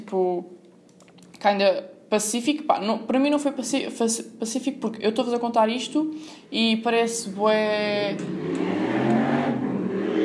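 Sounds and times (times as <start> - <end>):
speech: 0.1 - 0.6, 1.4 - 8.6
motorcycle engine passing by: 8.2 - 10.2.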